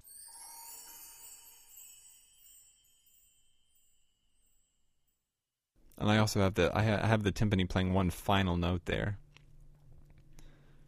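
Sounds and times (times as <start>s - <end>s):
mark tree chimes glissando: 0.0s - 5.3s
speech: 6.0s - 9.2s.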